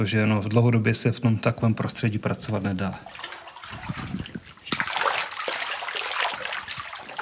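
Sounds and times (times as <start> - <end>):
speech: 0.0 - 3.3
water trickling: 2.4 - 7.2
footsteps sloshing through shallow water in an underground mine: 3.0 - 7.2.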